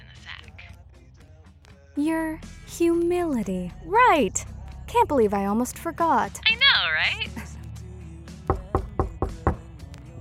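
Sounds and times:
speech: 0:02.0 - 0:07.6
firm knocking on a door: 0:08.4 - 0:09.7.

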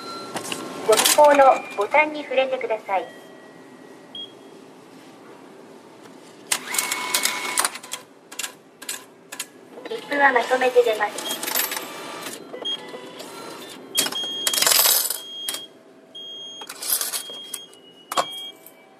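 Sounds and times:
train-station ticket vending machine in Japan dispensing tickets after coins are fed in: 0:00.3 - 0:01.9, 0:06.5 - 0:15.7, 0:16.4 - 0:18.9
people talking: 0:00.9 - 0:03.2, 0:09.8 - 0:11.3.

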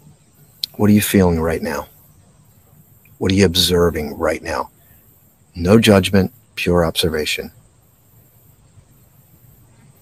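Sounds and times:
crickets chirping: 0:00.0 - 0:10.0
low outdoor rumble: 0:00.0 - 0:10.0
speech: 0:00.8 - 0:01.9, 0:03.2 - 0:04.8, 0:05.6 - 0:07.6.

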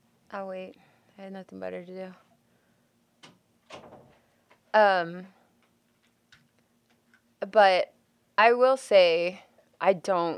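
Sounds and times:
speech: 0:00.3 - 0:02.3, 0:04.7 - 0:05.4, 0:07.4 - 0:10.3
door rattling: 0:03.2 - 0:04.2.

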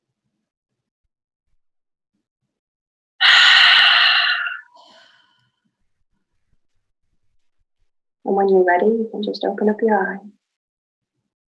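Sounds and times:
long deep breath sigh: 0:03.2 - 0:05.4
speech: 0:08.3 - 0:10.4.

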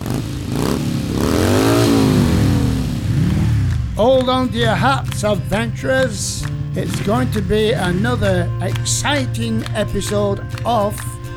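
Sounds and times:
very large motorbike engines revving: 0:00.0 - 0:11.3
speech: 0:04.0 - 0:11.2.

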